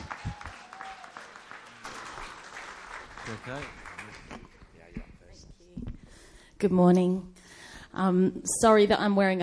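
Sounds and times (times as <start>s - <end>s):
audience clapping: 0.0s - 5.3s
speech: 3.3s - 4.2s, 6.6s - 7.4s, 8.0s - 9.4s.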